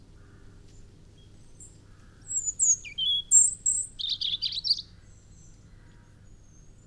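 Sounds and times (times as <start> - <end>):
European robin Erithacus rubecula singing: 2.3 - 4.9.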